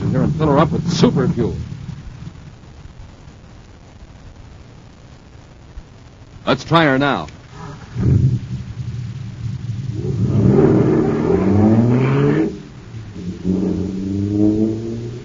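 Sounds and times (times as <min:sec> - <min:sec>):
supercharged jet car engine revving and accelerating: 0:00.0 - 0:02.6, 0:07.4 - 0:15.2
speech: 0:00.4 - 0:01.7, 0:06.5 - 0:07.4, 0:08.0 - 0:08.4.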